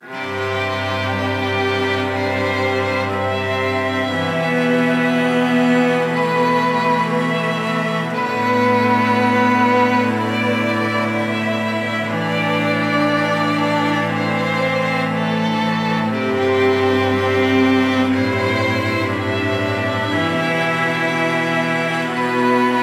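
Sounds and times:
solo string section in C: 0.0 - 22.8.

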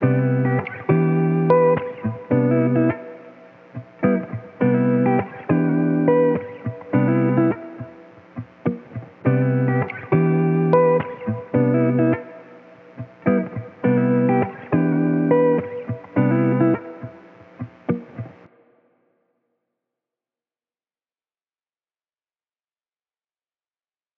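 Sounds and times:
wet electric guitar in E minor: 0.0 - 18.7.

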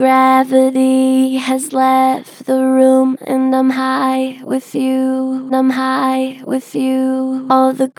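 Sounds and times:
gentle flat-pitched vocals: 0.0 - 7.9.

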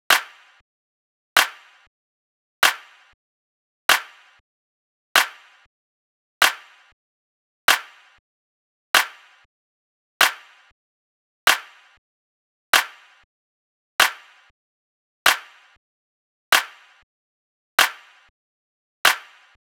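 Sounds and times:
space drum loop with clap at 95 BPM: 0.1 - 0.6, 1.4 - 1.9, 2.6 - 3.2, 3.9 - 4.4, 5.2 - 5.7, 6.4 - 7.0, 7.7 - 8.2, 9.0 - 9.5, 10.2 - 10.7, 11.5 - 12.0, 12.8 - 13.3, 14.0 - 14.5, 15.3 - 15.7, 16.6 - 17.0, 17.8 - 18.2, 19.1 - 19.6.

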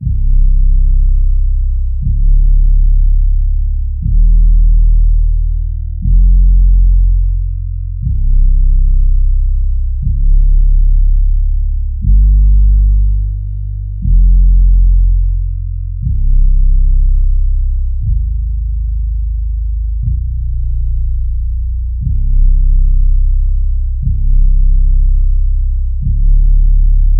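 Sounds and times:
bass line in A-flat major at 60 BPM: 0.0 - 27.1.

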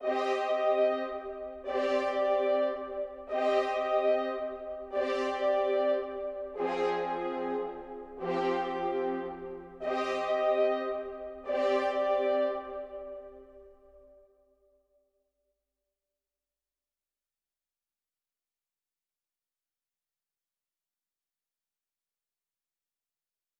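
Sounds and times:
147 BPM C minor brass melody loop: 0.0 - 13.5.

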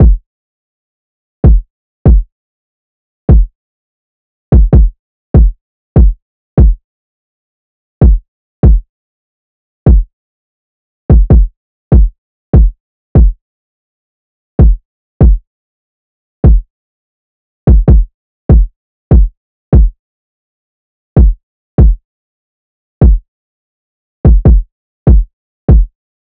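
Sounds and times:
kick drum loop: 0.0 - 0.2, 1.4 - 2.3, 3.3 - 3.5, 4.5 - 6.8, 8.0 - 8.8, 9.9 - 10.1, 11.1 - 13.4, 14.6 - 15.4, 16.4 - 16.7, 17.7 - 20.0, 21.2 - 22.0, 23.0 - 23.2, 24.2 - 25.9.

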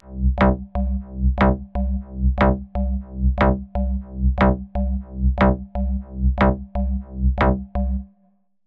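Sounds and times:
house synth loop in C minor at 120 BPM: 0.2 - 7.8.

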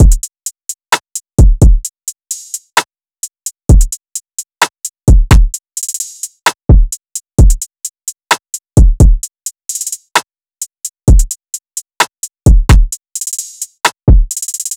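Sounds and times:
trap drum loop at 130 BPM: 0.0 - 14.7.

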